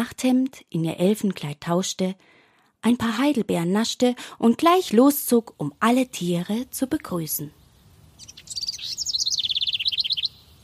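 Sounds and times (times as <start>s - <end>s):
speech: 0.0s - 7.6s
bird chirping and trilling: 7.5s - 10.6s.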